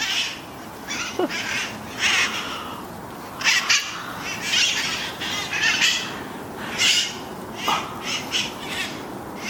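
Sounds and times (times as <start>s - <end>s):
flock of feral parrots squawking: 0.0s - 9.4s
steady outdoor noise: 0.0s - 9.4s.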